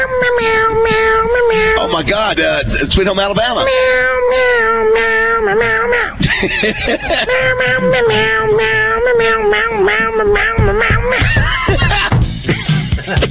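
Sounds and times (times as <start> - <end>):
man from the office imitating cat meows: 0.0 - 2.2, 3.5 - 6.2, 7.2 - 12.1
speech: 2.0 - 12.1
laughter: 6.2 - 8.7, 11.0 - 13.2.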